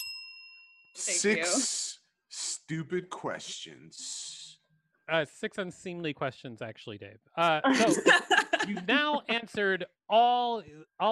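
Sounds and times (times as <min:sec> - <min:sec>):
bell ding: 0:00.0 - 0:01.0
speech: 0:01.1 - 0:01.9, 0:02.7 - 0:04.2, 0:05.1 - 0:11.0
loud breathy voice: 0:01.1 - 0:04.6
laughter: 0:07.6 - 0:09.5.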